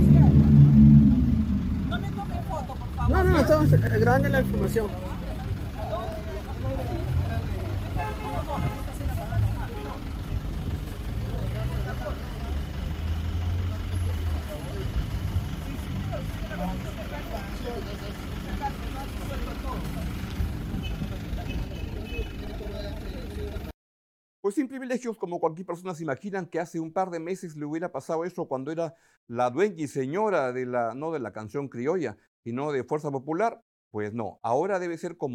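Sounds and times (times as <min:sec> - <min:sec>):
street traffic: 0:00.0 - 0:23.8
tow truck heavy engine rumbling: 0:00.0 - 0:23.8
speech: 0:03.6 - 0:05.2, 0:24.5 - 0:35.3.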